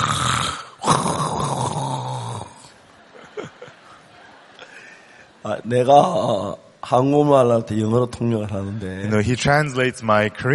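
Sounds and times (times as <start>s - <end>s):
person imitating loud snoring with their voice: 0.0s - 2.7s
laughter: 2.6s - 6.5s
speech: 5.5s - 10.5s.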